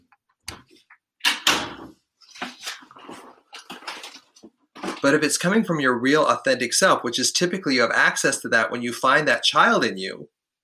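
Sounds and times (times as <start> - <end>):
soft rattling and handling noises: 0.5 - 5.1
door pulled shut with a double thud: 1.2 - 2.0
speech: 5.0 - 10.4.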